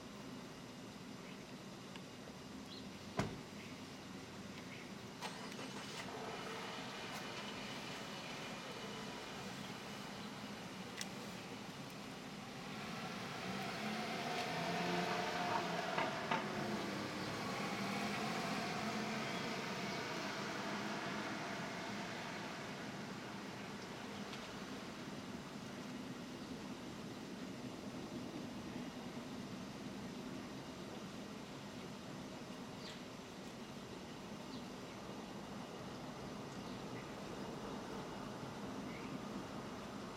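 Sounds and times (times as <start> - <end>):
steady low hum of city street traffic: 0.2 - 40.1
plane overhead or passing vehicle: 12.4 - 24.8.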